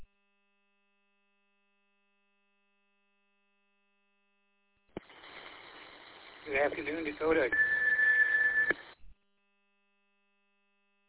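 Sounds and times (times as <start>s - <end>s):
hissy radio static: 5.0s - 9.1s
speech: 6.5s - 7.8s
high electronic beep of a radio transmission timeout timer: 7.5s - 8.8s.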